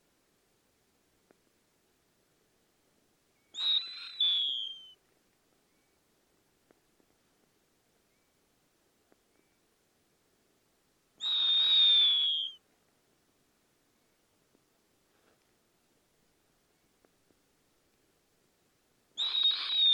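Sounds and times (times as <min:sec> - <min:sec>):
snowy owl rasping whistled screams: 0:03.6 - 0:05.0, 0:11.2 - 0:12.6, 0:19.2 - 0:19.9.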